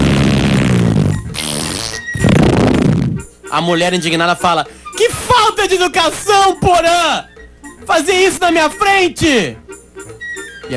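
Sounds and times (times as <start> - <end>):
loud buzzy comic fart sound effect: 0.0 - 3.3
speech: 3.5 - 9.6.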